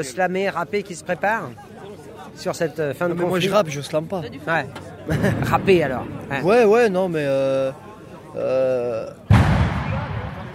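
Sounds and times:
speech: 0.0 - 1.7, 2.3 - 9.3
firecracker exploding during a celebration: 9.3 - 10.5.

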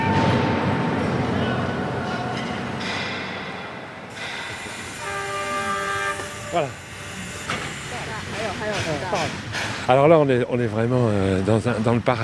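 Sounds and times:
steam locomotive rumbling and clanking: 0.0 - 11.0
steam locomotive hissing at a coal mine in China: 4.1 - 11.8
steam locomotive horn blast: 4.4 - 8.4
speech: 6.5 - 6.8, 8.6 - 12.2.

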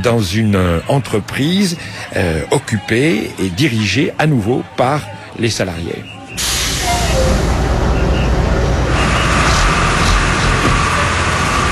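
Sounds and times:
speech: 0.0 - 6.5
voices inside a moving bus: 0.0 - 11.3
rumble and road noise inside a moving bus near Los Teques Venezuela: 6.2 - 11.6.

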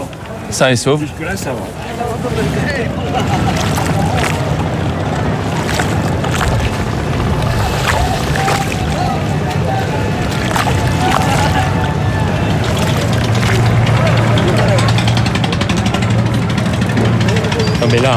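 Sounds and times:
steady low boat engine rumble at the port of Dakar: 0.0 - 18.1
speech: 0.5 - 4.3, 17.9 - 18.1
lapping water at the port of Dakar: 1.3 - 17.5
indistinct voices at the port of Dakar: 1.8 - 18.1
laughter: 1.9 - 5.4, 7.3 - 17.8.

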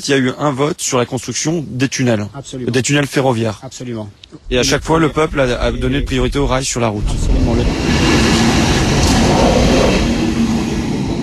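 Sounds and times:
speech: 0.0 - 8.1
long freight train carrying cars passing: 4.5 - 11.2.

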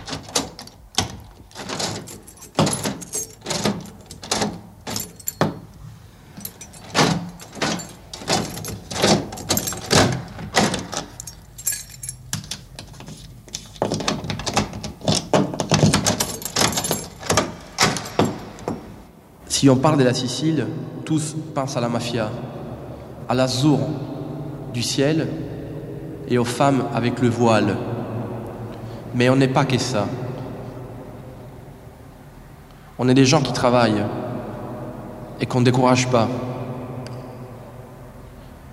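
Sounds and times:
key turning in a door lock to lock the door: 0.0 - 19.0
speech: 19.6 - 22.6, 23.3 - 24.1, 24.7 - 25.5, 26.3 - 28.0, 29.1 - 30.2, 33.0 - 34.2, 35.4 - 36.5.

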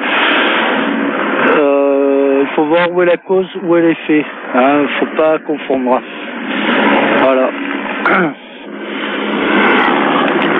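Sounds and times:
helicopter flying overhead: 0.0 - 10.5
speech: 2.7 - 7.5, 8.1 - 8.4.

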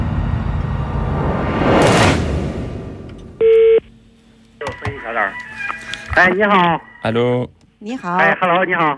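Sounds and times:
loud rushing whoosh of noise: 0.1 - 3.1
short electronic telephone dialing tone beep: 3.4 - 3.8
speech: 6.2 - 8.9.

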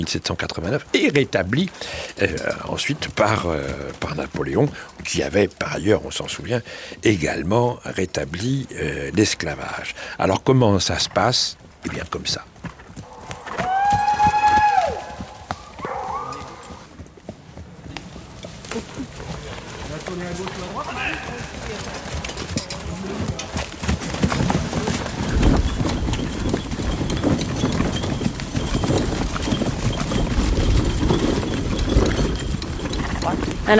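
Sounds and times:
speech: 0.0 - 12.5
hooves of a black horse pulling a small cart clip-clopping: 0.0 - 33.7.

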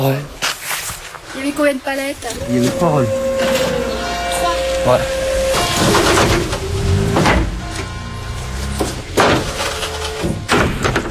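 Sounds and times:
speech: 0.0 - 0.4, 1.4 - 3.6, 4.8 - 5.2
delivery truck doors shutting: 2.3 - 11.0.

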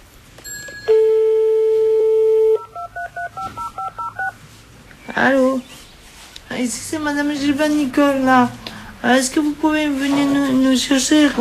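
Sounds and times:
telephone dial tone: 0.9 - 4.4
touch-tone keypad dialing beeps to call a taxi: 2.4 - 4.3
speech: 5.2 - 5.7, 6.6 - 11.3.

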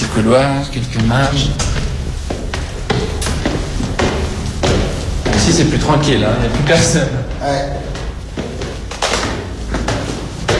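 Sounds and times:
heavy fire door pushed open: 0.0 - 7.1
low rumble: 0.0 - 10.5
speech: 0.2 - 1.8, 5.5 - 7.8.

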